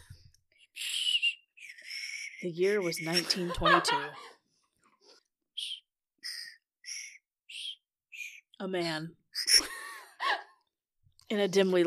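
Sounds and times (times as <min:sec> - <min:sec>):
candy whistle pop tooting: 0:00.6 - 0:03.1, 0:05.6 - 0:08.5
speech: 0:02.4 - 0:04.3, 0:08.6 - 0:09.2, 0:11.3 - 0:11.8
laughter: 0:03.0 - 0:04.4.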